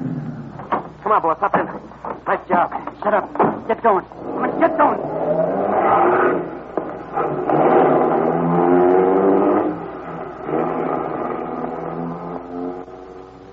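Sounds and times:
speech: 1.1 - 6.5
getaway car engine revving and accelerating: 4.2 - 13.5.

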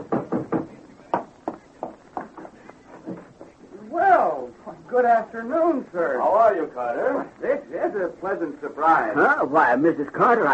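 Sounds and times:
sharp knocking on a door with a short hollow ring: 0.0 - 3.5
speech: 4.9 - 10.5.

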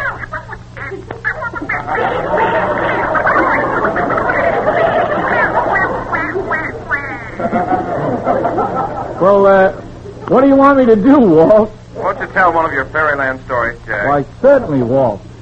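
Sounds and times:
cartoonish duck voice squawking and quacking: 0.0 - 7.4
laughter: 0.0 - 10.2
steady low hum: 0.0 - 14.6
speech: 9.2 - 9.8, 10.4 - 11.8, 12.4 - 15.3.

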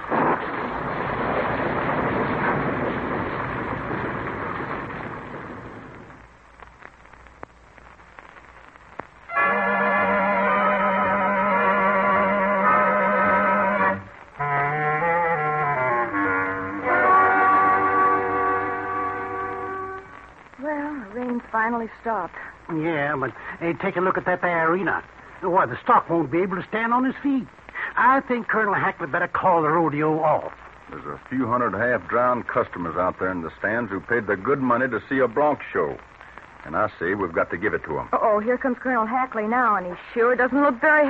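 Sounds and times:
heavy rain pouring: 0.0 - 41.0
sustained musical tones: 9.3 - 20.3
speech: 21.2 - 41.0.

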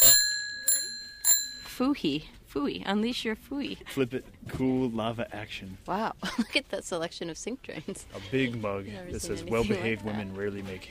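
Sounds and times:
metal bicycle jingle bell ringing: 0.0 - 1.8
speech: 1.8 - 10.8.

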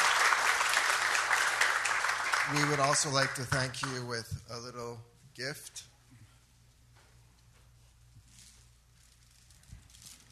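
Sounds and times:
room full of people applauding: 0.0 - 4.1
speech: 2.5 - 5.9.

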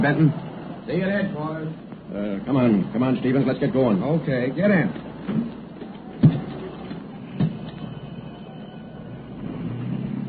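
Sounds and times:
speech: 0.0 - 5.6
car engine starting and revving: 9.2 - 10.2.

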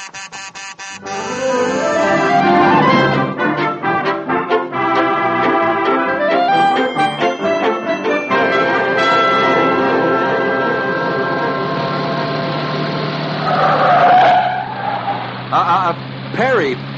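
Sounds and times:
car tires squealing in a skid: 0.9 - 6.9, 8.3 - 16.9
steady tonal background: 1.0 - 13.4
convertible car speeding: 1.0 - 16.9.

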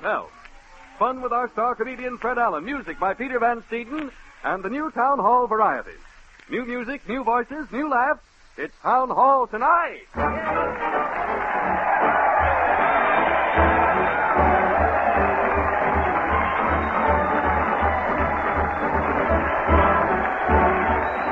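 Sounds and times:
speech: 0.0 - 0.4, 1.0 - 11.3
large crowd cheering at a street parade: 10.2 - 21.3.

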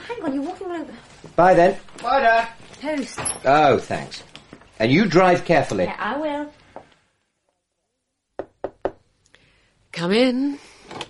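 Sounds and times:
speech: 0.2 - 6.6, 10.0 - 11.0
knocking on a bedroom door: 8.4 - 9.0.

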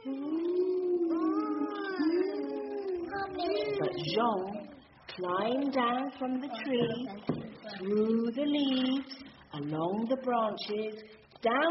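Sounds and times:
voice imitating howling wind: 0.0 - 4.1
speech: 3.9 - 4.6, 5.2 - 11.7.

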